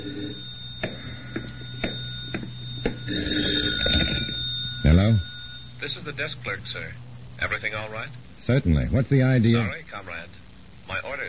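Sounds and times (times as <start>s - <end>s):
telephone ringing in a hotel room: 0.0s - 7.8s
speech: 5.9s - 11.2s.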